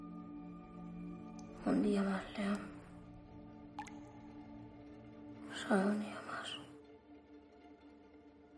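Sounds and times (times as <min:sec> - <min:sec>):
speech: 0:01.6 - 0:02.8, 0:05.7 - 0:06.2
water dripping from ceiling into bucket: 0:03.8 - 0:04.2.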